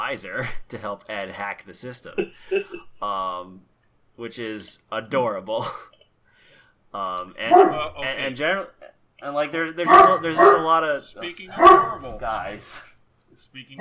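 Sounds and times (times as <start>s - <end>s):
speech: 0.1s - 6.0s, 6.9s - 13.7s
excited dog barking and yipping: 7.4s - 7.9s, 9.8s - 10.7s, 11.5s - 12.1s.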